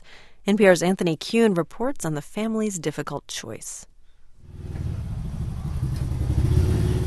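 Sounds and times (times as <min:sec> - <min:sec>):
speech: 0:00.4 - 0:03.9
motorbike engine rumbling on a ride home from school: 0:04.4 - 0:07.0.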